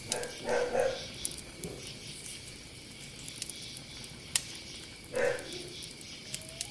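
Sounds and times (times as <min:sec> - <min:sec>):
steady noise: 0:00.0 - 0:06.6
dog barking inside a tent: 0:00.1 - 0:01.1, 0:05.1 - 0:05.6.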